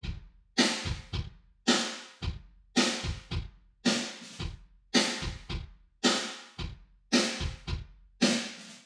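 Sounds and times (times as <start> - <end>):
wet kick drum: 0.0 - 1.5, 2.2 - 3.6, 4.4 - 8.0
wet snare drum: 0.6 - 8.8.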